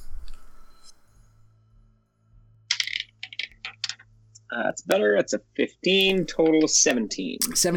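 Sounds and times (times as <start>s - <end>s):
dice clattering across a hard tabletop: 2.7s - 4.1s
speech: 4.5s - 7.7s.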